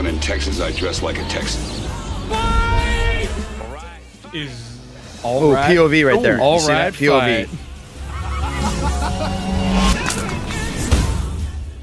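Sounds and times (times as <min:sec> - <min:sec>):
speech: 0:00.2 - 0:02.6, 0:04.3 - 0:07.7
faint murmur of voices: 0:01.4 - 0:07.8
laughter: 0:05.5 - 0:10.7
car roaring past: 0:07.6 - 0:10.9.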